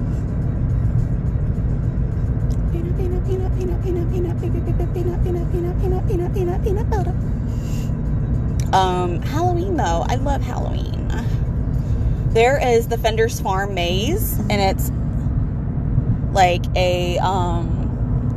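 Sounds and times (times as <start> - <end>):
low rumble and road noise in a moving car cabin: 0.0 - 18.3
wavering melodic voice-like tone: 2.6 - 7.2
speech: 4.2 - 7.4, 8.7 - 11.4, 12.4 - 15.0, 16.4 - 17.8.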